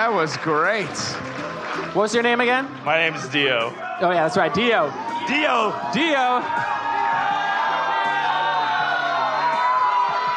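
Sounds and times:
speech: 0:00.0 - 0:06.8
large crowd cheering and whooping: 0:03.8 - 0:10.3
people shouting: 0:03.8 - 0:10.3.

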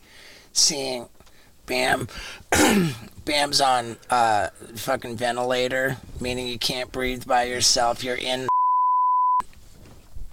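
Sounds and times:
speech: 0:00.6 - 0:08.5
electronic censor bleep: 0:08.5 - 0:09.4.

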